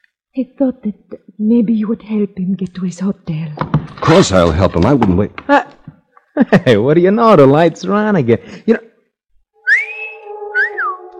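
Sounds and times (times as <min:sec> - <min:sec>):
speech: 0:00.4 - 0:05.8, 0:06.4 - 0:08.9
man's admiring wolf whistle: 0:09.6 - 0:11.1.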